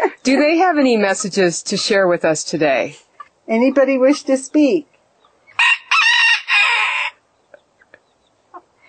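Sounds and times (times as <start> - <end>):
chickens clucking faintly: 0.0 - 5.8, 6.6 - 8.8
speech: 0.2 - 4.9
rooster crowing: 5.6 - 7.2.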